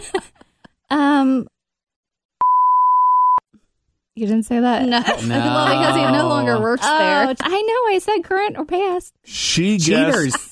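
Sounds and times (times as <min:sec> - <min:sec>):
laughter: 0:00.0 - 0:00.6, 0:04.9 - 0:07.6, 0:09.8 - 0:10.5
speech: 0:01.2 - 0:01.5, 0:04.2 - 0:10.5
flat pure-tone censorship bleep: 0:02.4 - 0:03.4.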